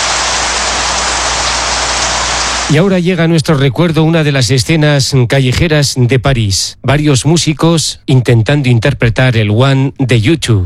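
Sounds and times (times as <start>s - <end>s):
heavy rain shower: 0.0s - 2.8s
speech: 2.7s - 10.6s.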